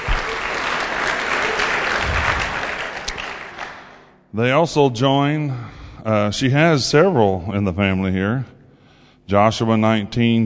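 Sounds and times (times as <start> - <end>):
crowd applauding: 0.0 - 4.1
speech: 4.4 - 8.6, 9.3 - 10.4.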